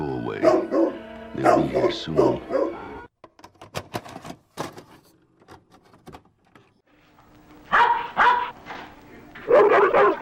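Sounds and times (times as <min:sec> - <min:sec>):
Doberman Pinschers barking: 0:00.4 - 0:03.0, 0:07.7 - 0:08.6, 0:09.4 - 0:10.1
speech: 0:01.5 - 0:02.6.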